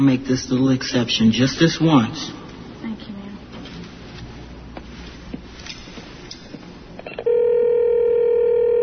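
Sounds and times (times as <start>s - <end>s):
speech: 0.0s - 2.4s
electronic telephone ring tone on the line: 7.2s - 8.8s.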